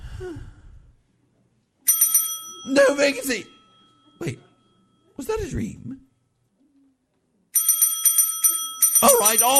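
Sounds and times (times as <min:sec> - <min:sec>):
speech: 0:00.2 - 0:00.6, 0:02.6 - 0:03.5, 0:04.2 - 0:04.4, 0:05.2 - 0:06.0, 0:09.0 - 0:09.5
bright metallic bell ringing rapidly: 0:01.9 - 0:05.0, 0:07.6 - 0:09.5.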